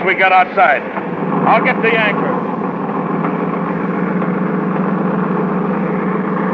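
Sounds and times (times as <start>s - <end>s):
speech: 0.0s - 2.2s
boat engine idling: 0.0s - 6.5s.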